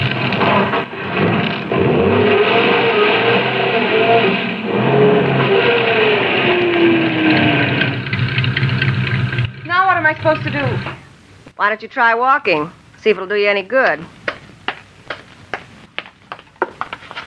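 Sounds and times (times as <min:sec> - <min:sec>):
car engine revving as car backs off the road: 0:00.0 - 0:11.0
speech: 0:11.6 - 0:14.2.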